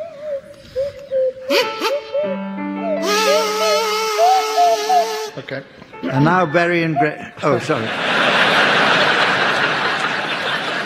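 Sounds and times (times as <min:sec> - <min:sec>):
swanee whistle sliding glides: 0:00.0 - 0:05.4
kazoo playing a wobbly tune: 0:00.0 - 0:07.4
speech: 0:05.5 - 0:08.3
laughter: 0:07.2 - 0:10.8.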